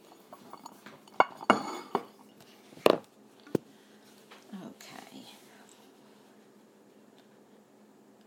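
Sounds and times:
plates and utensils clinking as they are loaded into a dishwasher: 0:00.0 - 0:02.3.

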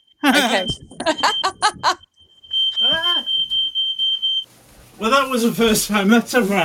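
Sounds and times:
smoke alarm set off by burning bacon in a home: 0:00.0 - 0:04.5
speech: 0:00.3 - 0:01.3, 0:05.0 - 0:06.6.

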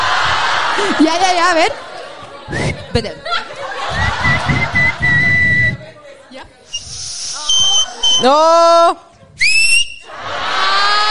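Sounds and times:
laughter: 0:00.0 - 0:06.9, 0:10.0 - 0:11.0
speech: 0:00.8 - 0:01.9, 0:02.5 - 0:03.5, 0:08.2 - 0:09.0
person whistling short high notes in a whistling contest: 0:04.0 - 0:05.8, 0:06.7 - 0:08.3, 0:09.4 - 0:10.1.

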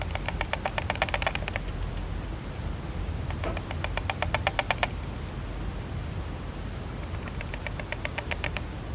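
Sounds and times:
deathwatch beetle males tapping heads inside burrows in wooden beams: 0:00.0 - 0:01.8, 0:03.3 - 0:04.9, 0:07.0 - 0:08.7
background noise: 0:00.0 - 0:08.9.

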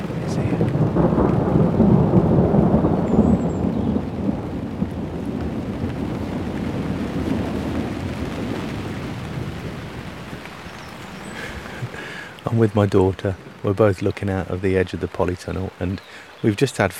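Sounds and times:
thunder rumbling during rainstorm: 0:00.0 - 0:16.2
steady rain hissing: 0:00.0 - 0:16.9
speech: 0:12.6 - 0:16.9.

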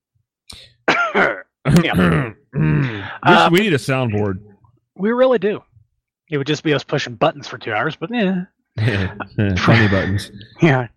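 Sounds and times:
person faking a cough with their voice: 0:00.8 - 0:03.4
speech: 0:01.2 - 0:05.7, 0:06.3 - 0:10.9.

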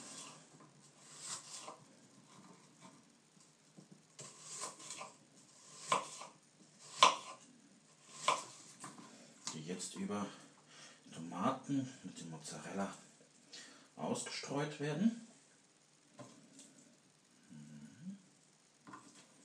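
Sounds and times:
knife slicing a large onion into rings: 0:01.0 - 0:01.8, 0:04.2 - 0:07.4, 0:08.0 - 0:08.6
speech: 0:09.7 - 0:10.4, 0:11.4 - 0:13.1, 0:14.0 - 0:15.3.

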